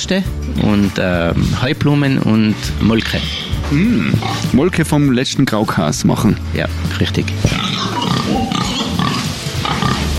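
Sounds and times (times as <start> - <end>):
speech: 0.0 - 8.5
pigs grunting and snuffling at feeding time: 3.1 - 4.6, 7.4 - 10.1.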